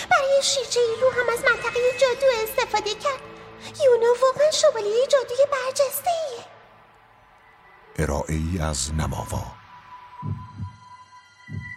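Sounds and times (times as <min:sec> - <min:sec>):
speech: 0:00.4 - 0:06.6, 0:08.0 - 0:09.6, 0:10.2 - 0:10.5
low heartbeat thumping: 0:10.2 - 0:11.7.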